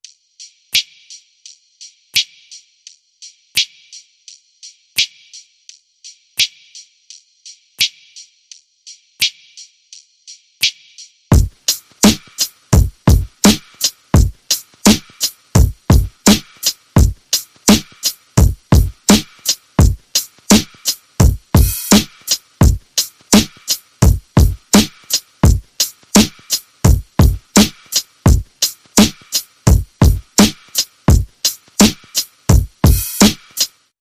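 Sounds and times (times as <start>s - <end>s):
chill hip hop beat: 11.3s - 33.7s.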